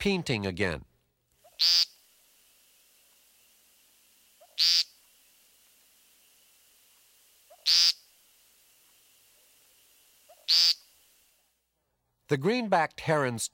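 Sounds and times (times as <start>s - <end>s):
speech: 0.0s - 0.9s, 1.6s - 1.9s, 4.6s - 4.9s, 12.3s - 13.5s
woodcock peent calls: 4.3s - 5.0s, 7.4s - 8.0s, 10.2s - 10.9s.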